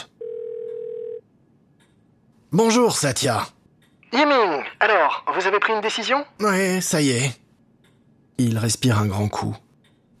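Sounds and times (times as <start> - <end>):
telephone dial tone of an outgoing call: 0.2 - 1.2
speech: 2.5 - 7.4, 8.4 - 9.6.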